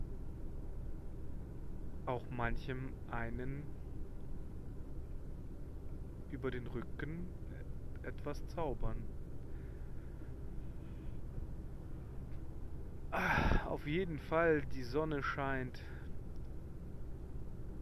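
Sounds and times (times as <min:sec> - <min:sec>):
engine and road rumble inside a moving car: 0:00.0 - 0:17.8
speech: 0:02.1 - 0:03.8, 0:06.3 - 0:09.2, 0:13.1 - 0:16.0
man sighing: 0:13.1 - 0:13.7.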